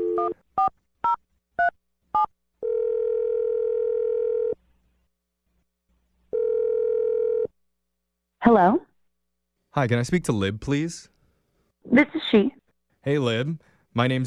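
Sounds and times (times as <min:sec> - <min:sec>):
long steady telephone tone: 0:00.0 - 0:00.7, 0:02.6 - 0:04.6, 0:06.3 - 0:07.6
speech: 0:08.4 - 0:08.9, 0:09.8 - 0:11.1, 0:11.9 - 0:14.2.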